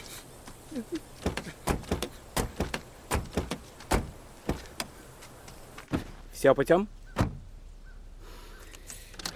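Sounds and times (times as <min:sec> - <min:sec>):
speech: 0:00.8 - 0:01.2, 0:06.4 - 0:07.0
car door slamming: 0:01.7 - 0:04.2, 0:07.2 - 0:07.5.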